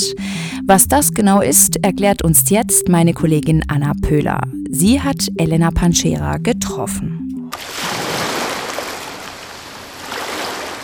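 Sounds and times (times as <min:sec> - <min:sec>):
speech: 0:00.0 - 0:07.8
ocean waves breaking on a beach: 0:07.6 - 0:10.8.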